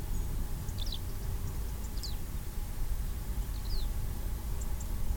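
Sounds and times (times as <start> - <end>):
skylark singing: 0.1 - 2.3, 3.3 - 5.0.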